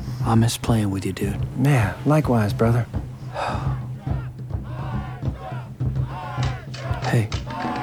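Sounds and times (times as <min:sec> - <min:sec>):
speech: 0:00.3 - 0:03.7, 0:07.1 - 0:07.7
audience cheering for an encore: 0:03.6 - 0:07.8.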